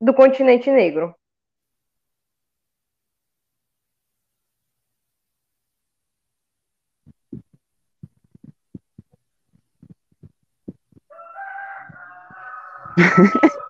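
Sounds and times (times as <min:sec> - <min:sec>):
speech: 0:00.0 - 0:01.2, 0:13.0 - 0:13.5
soft irregular low thumps: 0:07.0 - 0:11.1
rooster crowing: 0:11.1 - 0:13.6
laughter: 0:12.9 - 0:13.6.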